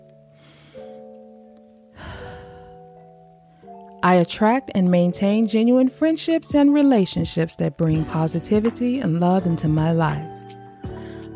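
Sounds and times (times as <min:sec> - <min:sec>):
gentle music tones: 0:00.0 - 0:11.3
slow deep breath: 0:00.3 - 0:01.1, 0:02.0 - 0:02.9, 0:10.9 - 0:11.3
speech: 0:04.0 - 0:10.3.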